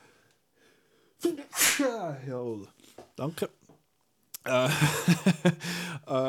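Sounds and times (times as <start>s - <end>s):
person sneezing loudly: 1.2s - 2.1s
speech: 1.3s - 3.6s, 4.4s - 6.2s
laughter: 4.5s - 6.2s.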